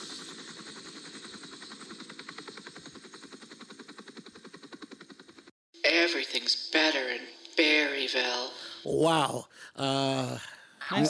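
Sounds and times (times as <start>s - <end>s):
helicopter rotor thumping: 0.0s - 5.5s
helicopter engine whine: 0.0s - 8.8s
speech: 6.1s - 11.0s.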